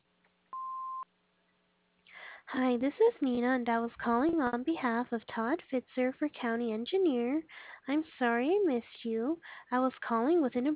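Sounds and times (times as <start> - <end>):
faint low hum: 0.0 - 10.7
answering machine beep: 0.6 - 1.0
speech: 2.5 - 10.7.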